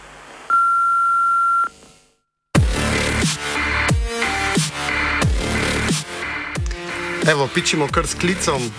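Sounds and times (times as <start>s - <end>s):
answering machine beep: 0.5s - 1.8s
loud driving music with heavy thumping drums: 2.6s - 8.7s
speech: 7.3s - 8.7s.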